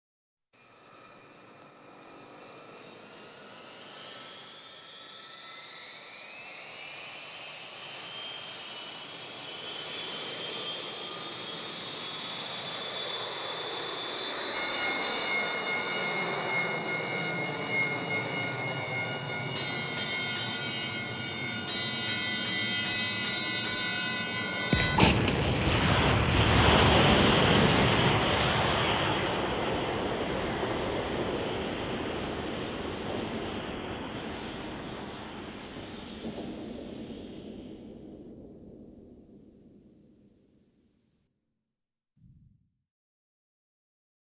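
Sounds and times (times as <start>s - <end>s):
Boeing 727 crash: 10.5s - 40.2s
fire alarm: 12.3s - 25.4s.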